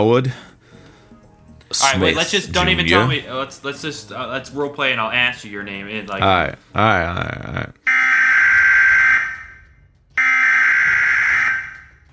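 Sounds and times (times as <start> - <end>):
speech: 0.0 - 0.5, 1.7 - 8.0
electronic alarm warbling and blaring: 7.9 - 12.0.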